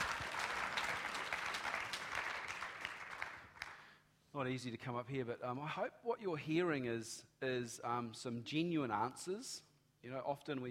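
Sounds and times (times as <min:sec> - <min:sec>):
audience applause: 0:00.0 - 0:03.8
speech: 0:04.4 - 0:10.6.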